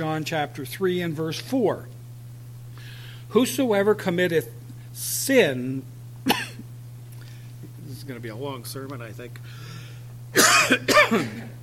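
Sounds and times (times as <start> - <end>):
low hum: 0.0 - 11.6
speech: 0.2 - 2.0, 3.3 - 6.4, 8.0 - 9.6, 10.3 - 11.6
person coughing during a sermon: 6.3 - 6.7, 10.4 - 11.6.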